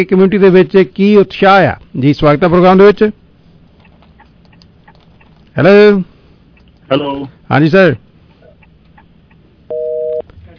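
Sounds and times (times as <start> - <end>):
speech: 0.0 - 3.2, 5.6 - 6.1, 6.9 - 8.0
telephone busy tone as a phone line drops: 9.7 - 10.2.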